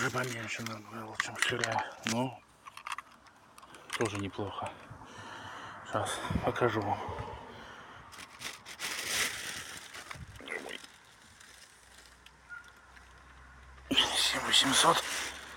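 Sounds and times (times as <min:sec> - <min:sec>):
plastic bag of freshly picked chanterelle mushrooms rustling: 0:00.0 - 0:01.2, 0:08.1 - 0:12.2, 0:14.6 - 0:15.5
speech: 0:00.1 - 0:02.4, 0:04.0 - 0:04.9, 0:05.9 - 0:07.3, 0:14.5 - 0:15.3.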